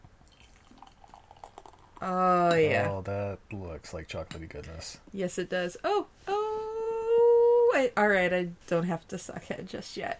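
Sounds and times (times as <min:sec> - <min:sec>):
quiet hiss: 0:00.0 - 0:10.1
dark beer from Fairfield California pouring into a glass: 0:00.2 - 0:03.0
speech: 0:02.0 - 0:06.4, 0:07.8 - 0:10.1.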